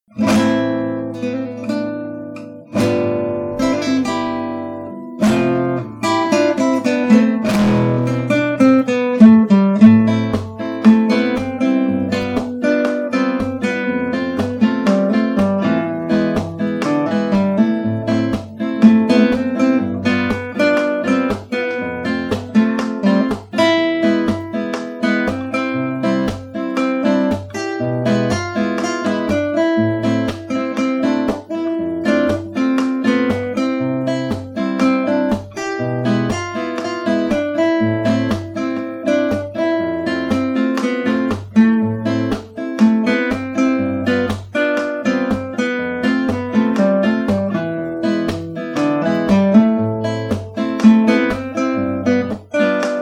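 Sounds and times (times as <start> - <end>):
Spanish guitar: 0.0 - 53.0.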